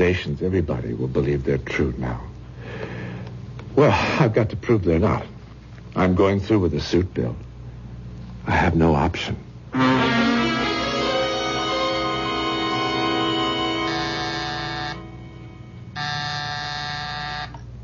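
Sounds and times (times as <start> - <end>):
speech: 0.1 - 2.9, 3.7 - 5.3, 6.0 - 7.5, 8.4 - 10.2
electric buzzing: 9.7 - 17.7.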